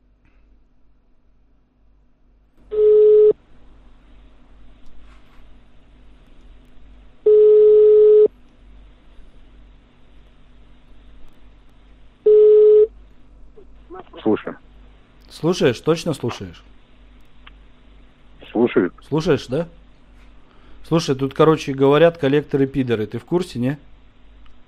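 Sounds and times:
faint low hum: 0.0 - 24.6
telephone line tones as a number is dialed: 2.7 - 3.4, 7.3 - 8.3, 12.3 - 12.9
speech: 15.4 - 16.8, 18.8 - 19.8, 20.9 - 23.9.

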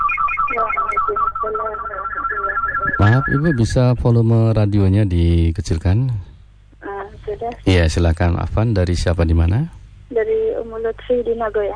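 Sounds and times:
telephone melodic electronic ringtone for an incoming call: 0.0 - 3.7
speech: 1.4 - 6.3, 7.3 - 11.7.

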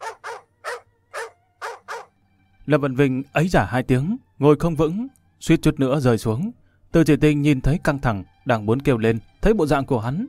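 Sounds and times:
two guard dogs barking madly: 0.0 - 2.1
speech: 2.7 - 10.2.

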